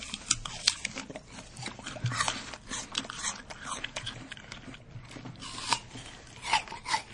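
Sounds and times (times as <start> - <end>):
crisp bites of a sweet apple crunching: 0.0 - 7.1
wet chewing of a sweet apple: 0.0 - 7.1.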